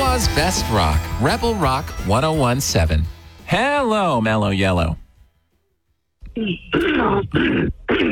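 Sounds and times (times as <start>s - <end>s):
speech: 0.2s - 5.0s, 6.4s - 8.1s
person clearing throat gruffly: 6.3s - 8.1s.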